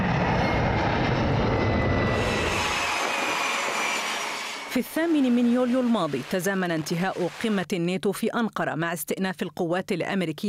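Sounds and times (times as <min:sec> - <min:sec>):
jet aircraft roaring overhead: 0:00.0 - 0:07.5
speech: 0:04.8 - 0:10.4.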